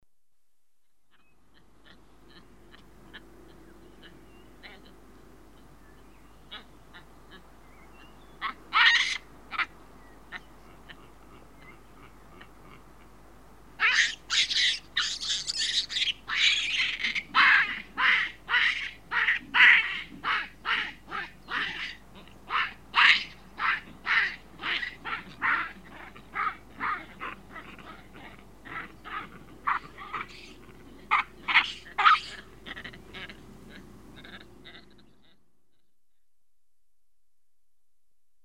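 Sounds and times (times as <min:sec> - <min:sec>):
juvenile screaming in Africa: 0:08.4 - 0:09.7, 0:13.8 - 0:35.0.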